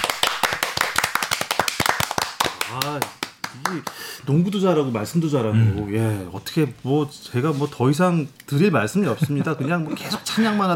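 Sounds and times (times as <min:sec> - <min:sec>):
crisp hand claps: 0:00.0 - 0:04.0
speech: 0:02.7 - 0:10.7.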